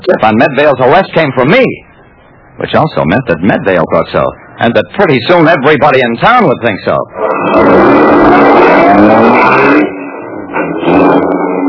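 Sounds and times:
speech: 0.0s - 1.9s, 2.6s - 8.2s, 8.9s - 9.9s
car engine revving as car pulls away: 7.1s - 11.6s.

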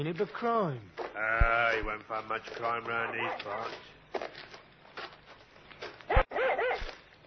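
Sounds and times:
speech: 0.0s - 4.2s
dog barking excitedly: 3.0s - 3.8s, 6.1s - 7.0s.

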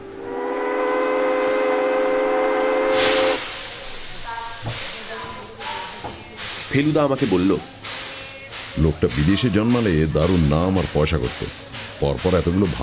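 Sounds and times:
train steam whistle: 0.2s - 3.6s
hissing steam from a train pulling away: 0.9s - 12.8s
speech: 6.7s - 7.8s, 8.8s - 12.8s.

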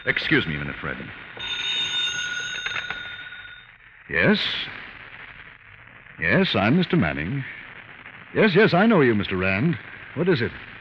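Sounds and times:
speech: 0.0s - 1.3s, 4.1s - 4.8s, 6.2s - 7.6s, 8.3s - 10.7s
old-style telephone bell ringing: 1.4s - 3.7s.

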